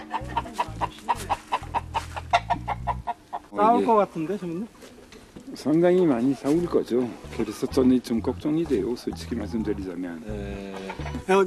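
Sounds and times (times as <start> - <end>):
forest-raised chickens clucking: 0.0 - 4.1, 6.2 - 11.3
speech: 3.6 - 4.8, 5.5 - 11.4.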